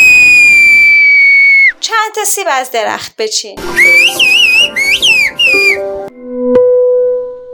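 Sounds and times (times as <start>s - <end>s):
loud piercing finger whistle made with the middle finger: 0.0s - 1.8s, 3.8s - 5.9s
speech: 2.2s - 4.2s.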